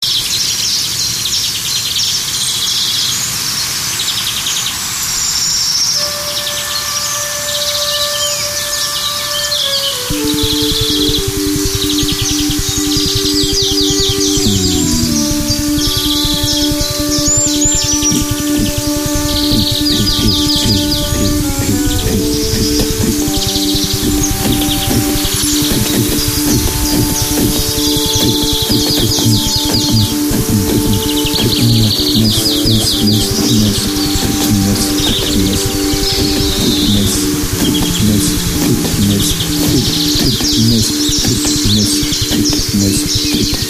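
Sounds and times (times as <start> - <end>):
real birds: 0.0 - 43.6
synthetic cello: 6.0 - 43.6
real voice: 10.1 - 43.6.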